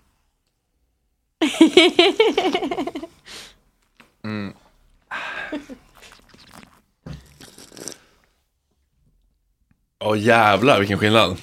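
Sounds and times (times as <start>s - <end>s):
speech: 1.6s - 3.1s, 10.1s - 11.4s
person slurping a sip of champagne with air: 5.8s - 8.4s.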